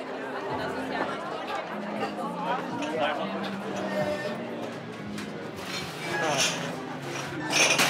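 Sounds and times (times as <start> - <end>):
busy crowd chatter at a full beach club: 0.0 - 7.8
glass bottles and glasses clinking while sorted into crates at a beach club: 5.6 - 7.8.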